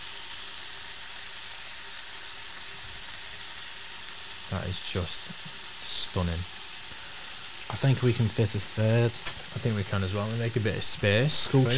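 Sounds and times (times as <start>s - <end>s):
bacon rashers sizzling in a frying pan: 0.0s - 11.7s
speech: 4.5s - 6.6s, 7.7s - 11.7s.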